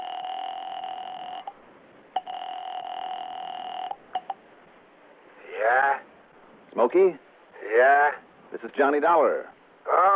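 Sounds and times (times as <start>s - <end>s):
telephone line tone during a call being placed: 0.0s - 1.6s, 2.2s - 4.4s
speech: 6.8s - 10.1s.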